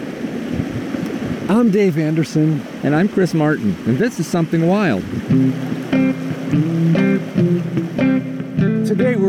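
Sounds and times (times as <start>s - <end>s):
brook tumbling over rocks in East Sutton New Hampshire: 0.0s - 8.0s
speech: 1.5s - 6.8s
tonal humming bursts: 5.0s - 9.2s.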